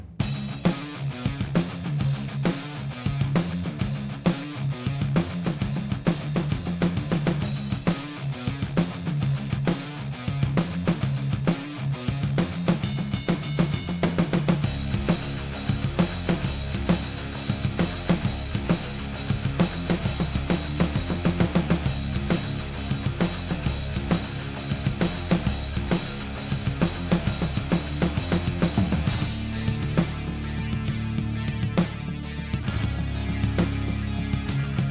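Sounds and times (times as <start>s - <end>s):
metal music mix: 0.3s - 34.9s.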